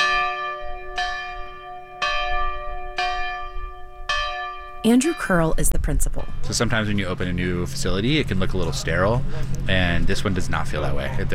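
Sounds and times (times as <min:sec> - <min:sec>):
old schoolhouse bell ringing: 0:00.0 - 0:06.6
speech: 0:04.8 - 0:11.3.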